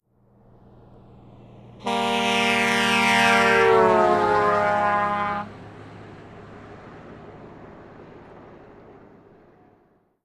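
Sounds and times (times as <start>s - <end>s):
18-wheeler truck horn passing at 45 mph: 1.8s - 5.9s.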